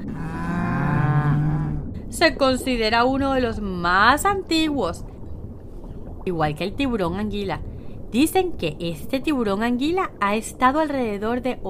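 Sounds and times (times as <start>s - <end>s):
cow mooing: 0.0s - 1.9s
speech: 2.1s - 5.1s, 6.3s - 11.6s.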